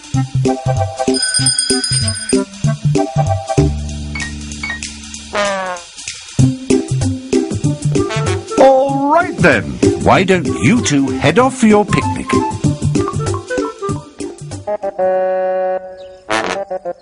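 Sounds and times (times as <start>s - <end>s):
playful cartoon music: 0.0s - 17.0s
speech: 0.2s - 3.8s, 9.4s - 12.7s
small bell rung to call for help: 1.1s - 2.7s.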